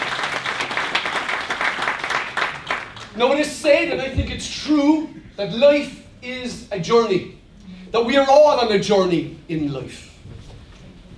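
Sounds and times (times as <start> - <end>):
audience applauding: 0.0 - 3.2
speech: 3.2 - 10.1.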